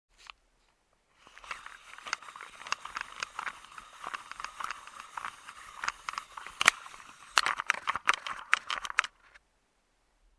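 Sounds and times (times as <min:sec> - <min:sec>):
Polaroid camera printing photo: 0:01.2 - 0:09.4.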